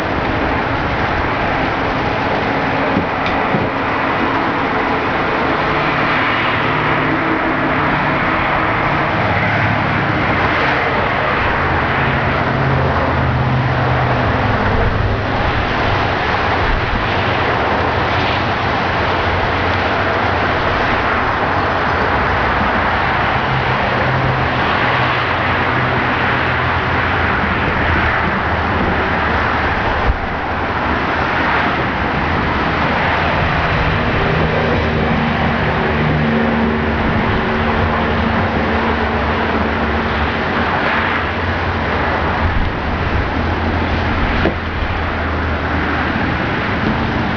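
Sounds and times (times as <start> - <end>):
vehicles on a motorway: 0.0 - 47.3.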